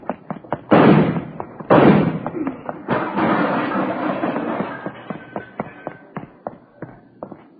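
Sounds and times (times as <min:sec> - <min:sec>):
knocks and thuds: 0:00.0 - 0:07.5
gunshots: 0:00.6 - 0:05.0.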